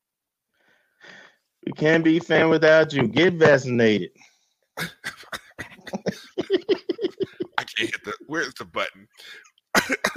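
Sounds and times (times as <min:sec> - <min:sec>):
speech: 0:01.6 - 0:05.3, 0:08.3 - 0:10.1
person coughing harshly while laughing hard: 0:04.8 - 0:06.6, 0:09.8 - 0:10.1.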